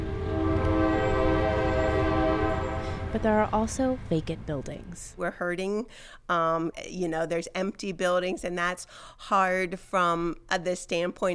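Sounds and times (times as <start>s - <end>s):
train horn blast in downtown Coshocton Ohio: 0.0s - 3.7s
train passing through downtown Coshocton Ohio: 0.0s - 5.9s
speech: 3.1s - 11.3s.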